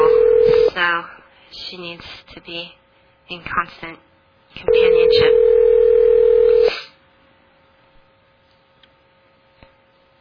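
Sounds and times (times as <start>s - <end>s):
telephone dial tone: 0.0s - 0.7s, 5.0s - 6.7s
quiet telephone line noise: 0.0s - 0.8s, 4.7s - 6.7s
speech: 0.9s - 5.9s.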